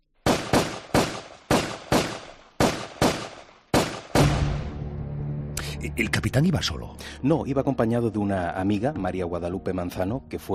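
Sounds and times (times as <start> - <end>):
loud sharp pistol gunshots: 0.2 - 4.7
speech: 5.8 - 10.5.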